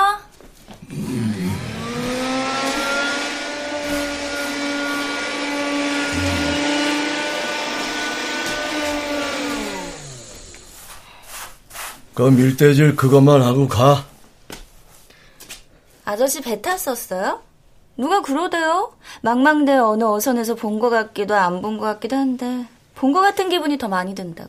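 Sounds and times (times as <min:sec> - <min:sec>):
vacuum cleaner running with high motor whine: 0:00.8 - 0:11.1
speech: 0:12.2 - 0:14.1, 0:16.1 - 0:24.4.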